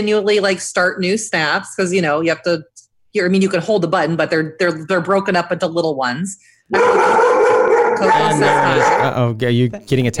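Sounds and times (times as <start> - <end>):
speech: 0.0 - 10.1
dog howling: 6.7 - 9.2.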